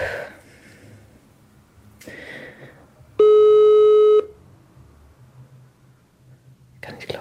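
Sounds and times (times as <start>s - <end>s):
mobile phone call ringing tone: 3.2s - 4.4s.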